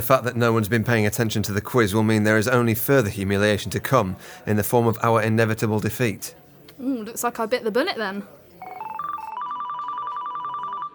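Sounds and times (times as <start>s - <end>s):
speech: 0.0s - 8.7s
mobile phone ringing with an electronic ringtone: 8.6s - 10.9s.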